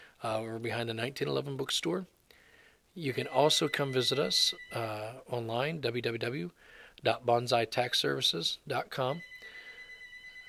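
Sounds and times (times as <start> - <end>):
speech: 0.2 - 2.2, 3.0 - 9.3
telephone ringing with a high electronic trill: 3.2 - 5.0, 9.1 - 10.4.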